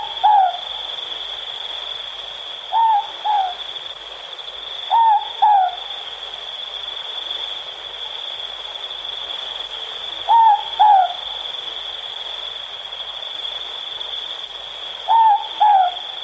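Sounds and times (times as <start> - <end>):
morepork owl calling two-note hoot in New Zealand: 0.0 - 0.8, 2.7 - 3.6, 4.9 - 6.1, 10.2 - 11.3, 15.0 - 16.2.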